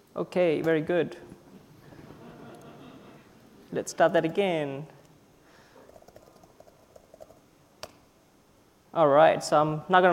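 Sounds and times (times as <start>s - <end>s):
speech: 0.2s - 1.3s, 3.7s - 5.0s, 9.0s - 10.1s
laughter: 1.8s - 3.7s
typing on a computer keyboard during a telnet session: 5.8s - 7.4s.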